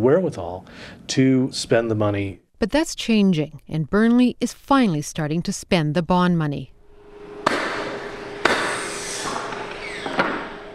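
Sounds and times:
speech: 0:00.0 - 0:06.7
construction noise with possible sawing: 0:06.8 - 0:10.7
hammer blows in a large room: 0:06.8 - 0:10.7.

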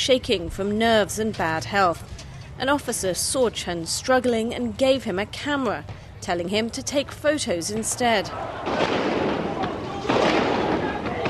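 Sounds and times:
speech: 0:00.0 - 0:09.2
continuous rattle of gunfire from the roof of the Great Hall of the People: 0:08.6 - 0:11.2.

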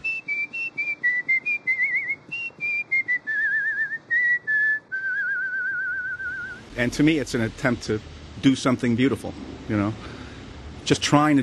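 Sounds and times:
person whistling an improvised melody: 0:00.0 - 0:06.6
speech: 0:06.8 - 0:10.2, 0:10.8 - 0:11.4.

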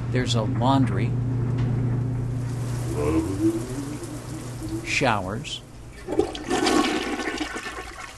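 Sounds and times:
speech: 0:00.1 - 0:01.3, 0:03.0 - 0:03.7, 0:04.9 - 0:06.3
toilet flushing in a cabin with a septic system: 0:02.3 - 0:08.1.

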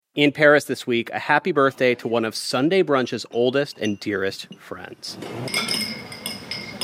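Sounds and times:
speech: 0:00.2 - 0:06.1
bar spoon clinking against glass and ice stirring a Bloody Mary: 0:03.4 - 0:04.7, 0:05.4 - 0:06.8.

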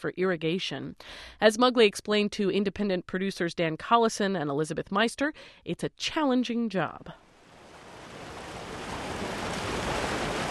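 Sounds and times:
speech: 0:00.0 - 0:07.2
Tongue River water rushing over diversion dam south of Miles City: 0:07.9 - 0:10.4.

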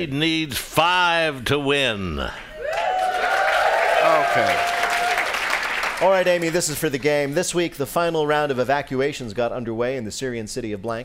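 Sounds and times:
speech: 0:00.0 - 0:02.5, 0:04.0 - 0:04.8, 0:06.0 - 0:11.0
audience applause: 0:02.6 - 0:06.7.

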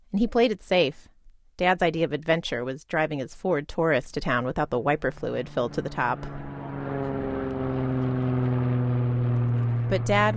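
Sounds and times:
speech: 0:00.2 - 0:06.5, 0:09.9 - 0:10.3
propeller airplane flying overhead: 0:04.2 - 0:10.3.

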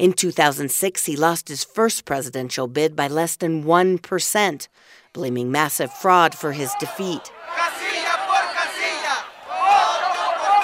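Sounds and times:
speech: 0:00.0 - 0:07.9
protest crowd chanting in unison in Mexico City's main streets: 0:05.9 - 0:10.6.

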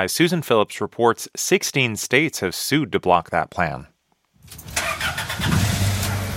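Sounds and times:
speech: 0:00.0 - 0:03.9
aging gasoline-powered white postal delivery truck engine in Philadelphia rumbling: 0:04.6 - 0:06.3.

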